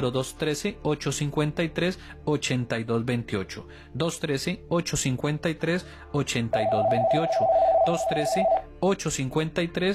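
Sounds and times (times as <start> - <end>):
speech: 0.0 - 9.9
telephone ringing with incoming call on a call-in program: 6.6 - 8.6.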